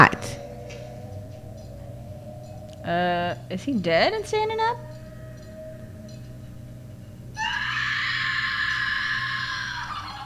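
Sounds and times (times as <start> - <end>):
speech: 2.9 - 4.9
person screaming: 7.4 - 10.2.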